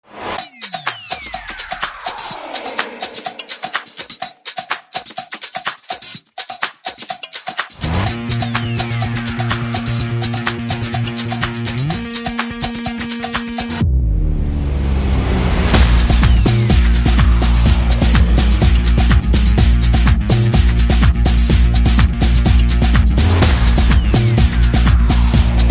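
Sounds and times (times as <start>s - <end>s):
sound effects: 0.0s - 4.6s, 7.8s - 21.4s, 22.2s - 25.6s
percussion groove: 0.2s - 13.8s, 15.7s - 25.6s
bass: 7.8s - 12.8s, 13.7s - 25.6s.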